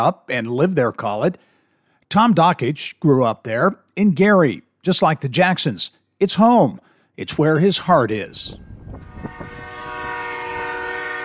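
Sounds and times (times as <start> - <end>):
speech: 0.0 - 1.5, 2.1 - 9.4
train rumbling past: 8.5 - 11.2.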